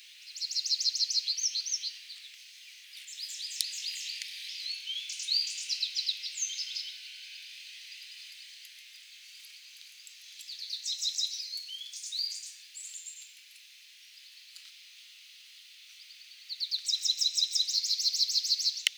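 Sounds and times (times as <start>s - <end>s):
American goldfinch Spinus tristis birdsong: 0.2s - 8.7s, 10.0s - 13.4s, 16.0s - 18.9s.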